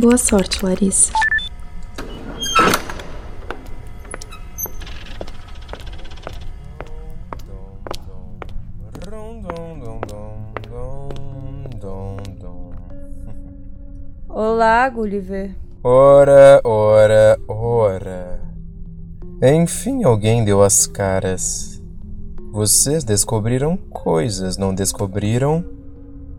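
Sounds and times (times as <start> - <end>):
speech: 0.0 - 1.3, 14.8 - 17.4, 19.4 - 21.7, 22.6 - 25.8
short electronic chirps and tones: 0.8 - 1.5
automatic door sliding open with motorized whir: 1.7 - 6.6.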